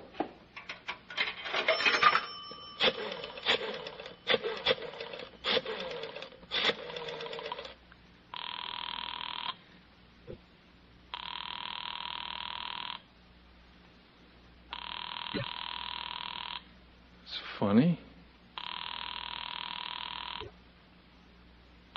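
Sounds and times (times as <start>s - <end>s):
telephone ringing: 1.4s - 7.8s, 8.4s - 9.6s, 11.2s - 13.0s, 14.7s - 16.7s, 18.6s - 20.5s.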